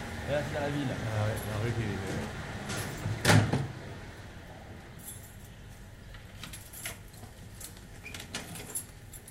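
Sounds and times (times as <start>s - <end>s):
speech: 0.3s - 3.2s
keys rattling and scraping in a lock: 5.0s - 5.6s, 6.2s - 9.2s.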